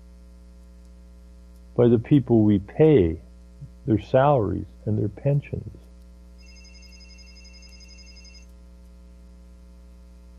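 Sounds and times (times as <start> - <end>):
low constant hum: 0.0 - 10.3
speech: 1.8 - 3.2, 3.9 - 5.8
telephone ringing with a trilling electronic tone: 6.4 - 8.5.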